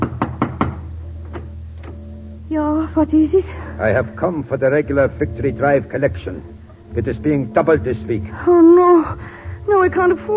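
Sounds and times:
knocking on the front door of a home: 0:00.0 - 0:01.5
low steady hum: 0:00.0 - 0:10.3
speech: 0:02.5 - 0:10.3.

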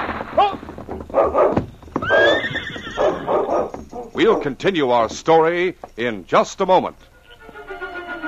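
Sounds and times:
horse hooves clip-clopping at a quick pace: 0:00.0 - 0:08.1
horse whinnying: 0:00.4 - 0:04.4
speech: 0:04.2 - 0:07.1.

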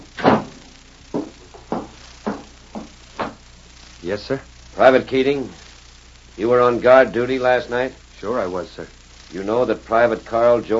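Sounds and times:
door shutting with a solid thud: 0:00.2 - 0:00.6
light knocks or footsteps at a walking pace: 0:00.2 - 0:03.4
speech: 0:04.1 - 0:05.6, 0:06.4 - 0:10.7.

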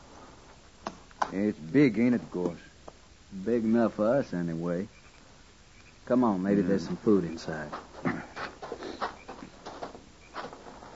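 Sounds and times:
speech: 0:01.3 - 0:02.7, 0:03.3 - 0:05.0, 0:06.1 - 0:07.9
horse snorting and breathing: 0:07.9 - 0:09.2.

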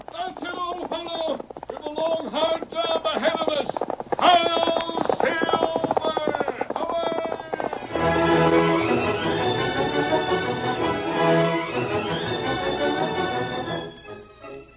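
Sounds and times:
horse hooves galloping: 0:00.0 - 0:14.7
loud orchestral music: 0:07.9 - 0:14.7.

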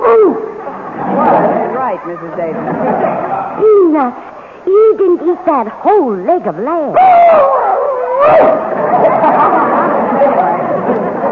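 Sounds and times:
busy murmur of voices: 0:00.0 - 0:11.3
laughter: 0:00.6 - 0:03.8, 0:08.4 - 0:11.3
speech: 0:01.9 - 0:07.6, 0:08.2 - 0:09.0
dog howling: 0:07.0 - 0:08.7.

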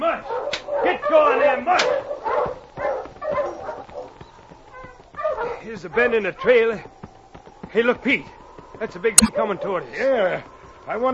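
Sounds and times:
sled dog barking on a trail: 0:00.1 - 0:06.9
speech: 0:05.8 - 0:07.0, 0:07.7 - 0:11.1.

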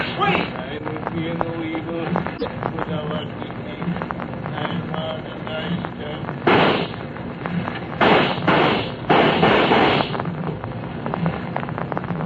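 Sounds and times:
steady crackling background: 0:00.0 - 0:12.2
speech: 0:01.2 - 0:04.0
loud gunshot blasts fired at a man: 0:06.4 - 0:07.0, 0:08.0 - 0:10.2.

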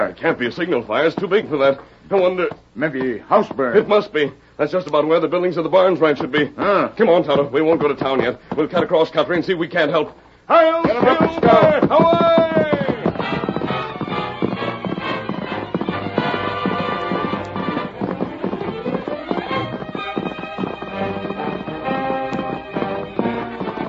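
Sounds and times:
horses galloping at full speed: 0:00.0 - 0:23.8
speech: 0:00.1 - 0:12.6
loud sweeping orchestral music: 0:13.1 - 0:23.8.

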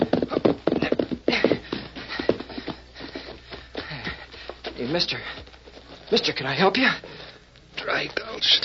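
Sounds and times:
horse hooves galloping along a trail and slowing to a stop: 0:00.0 - 0:08.6
speech: 0:04.8 - 0:05.5, 0:06.1 - 0:07.1, 0:07.9 - 0:08.6.

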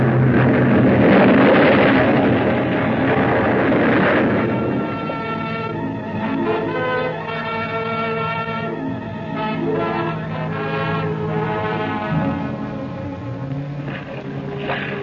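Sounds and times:
massive ship explosion: 0:00.0 - 0:06.5, 0:12.0 - 0:13.2
lingering ringing tonal swell: 0:01.9 - 0:15.0.

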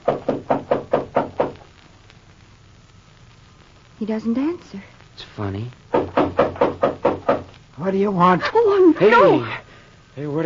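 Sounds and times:
firm knocking on a wooden door in a cemetery at night: 0:00.0 - 0:01.6, 0:05.9 - 0:07.5
speech: 0:04.0 - 0:05.8, 0:07.8 - 0:09.6, 0:10.2 - 0:10.4.

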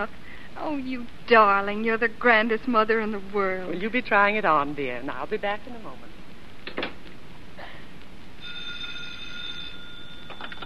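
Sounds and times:
speech: 0:00.0 - 0:06.2
hissy noisy background: 0:00.0 - 0:10.6
telephone ringing in a buzzing tone: 0:08.4 - 0:10.6.

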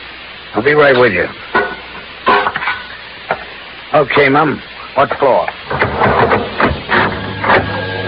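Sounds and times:
speech: 0:00.5 - 0:01.8, 0:03.9 - 0:06.6
elevator running as it ascends: 0:05.7 - 0:08.0.

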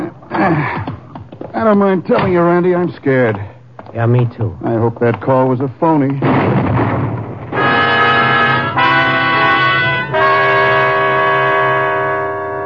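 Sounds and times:
speech: 0:00.4 - 0:00.9, 0:01.6 - 0:06.7
loud rumbling bomb blast: 0:06.2 - 0:10.4
sustained ringing droning tones: 0:07.5 - 0:12.6.

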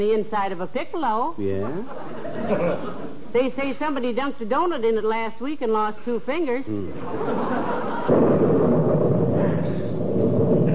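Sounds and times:
speech: 0:00.0 - 0:08.5
laughter: 0:01.5 - 0:03.3, 0:06.8 - 0:08.2
loud thunder crash from a storm: 0:07.1 - 0:10.7.

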